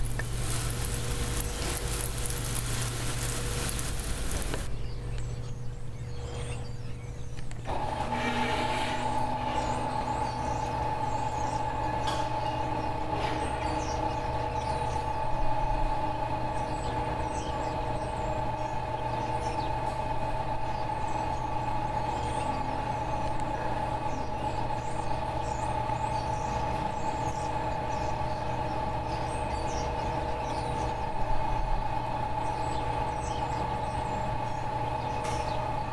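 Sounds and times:
loud rushing hiss in a greenhouse: 0.0s - 4.7s
constant mid-pitched whine: 0.0s - 35.9s
steady low machine hum in a greenhouse: 0.0s - 35.9s.

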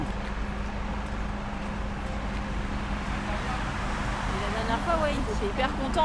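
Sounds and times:
dense steady road traffic: 0.0s - 6.0s
low engine hum from heavy vehicles: 0.0s - 6.0s
speech: 5.3s - 6.0s.

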